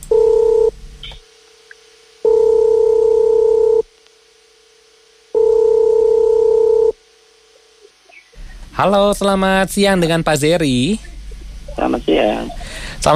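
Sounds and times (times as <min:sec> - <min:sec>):
telephone ringback tone while calling: 0:00.1 - 0:00.7, 0:02.3 - 0:03.8, 0:05.4 - 0:06.9
speech: 0:08.8 - 0:11.1, 0:12.0 - 0:13.1.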